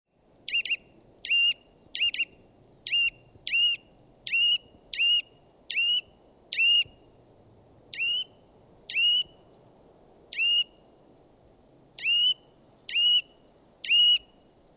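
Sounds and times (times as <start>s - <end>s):
Eurasian nuthatch Sitta europaea calling with loud clear whistled notes: 0.5s - 7.0s, 8.0s - 9.4s, 10.3s - 10.8s, 12.0s - 14.4s.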